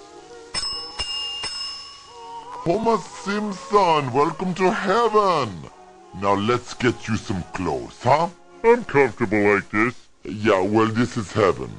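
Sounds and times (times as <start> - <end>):
desk bell being struck: 0.6 - 2.2
speech: 2.6 - 11.7.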